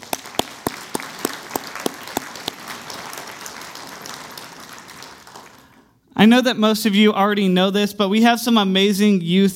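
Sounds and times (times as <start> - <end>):
church audience applause: 0.0 - 6.0
loud claps: 0.0 - 6.0
speech: 6.2 - 9.5.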